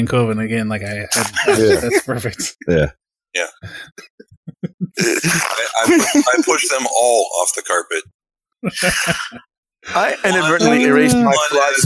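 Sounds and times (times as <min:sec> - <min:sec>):
speech: 0:00.0 - 0:04.4, 0:05.0 - 0:11.8
voice imitating fart noises: 0:01.1 - 0:01.7, 0:04.9 - 0:06.1
laughter: 0:01.1 - 0:02.9, 0:03.7 - 0:07.0, 0:08.6 - 0:11.8.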